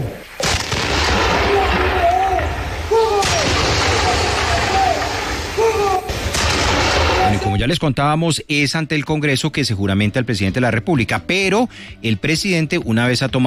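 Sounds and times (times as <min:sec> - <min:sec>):
artillery battery firing an honor salute at a presidential inauguration ceremony: 0:00.4 - 0:07.6
speech: 0:07.6 - 0:13.4.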